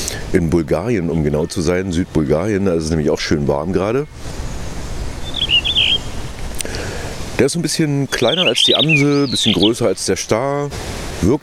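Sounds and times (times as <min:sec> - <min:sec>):
speech: 0:00.3 - 0:04.5, 0:07.4 - 0:11.4
blue rock thrush singing: 0:03.0 - 0:10.5.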